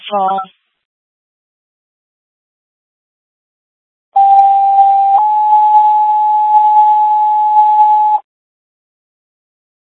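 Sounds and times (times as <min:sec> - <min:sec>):
speech: 0:00.1 - 0:00.6
two-tone electronic radio dispatch paging tones: 0:04.2 - 0:08.2.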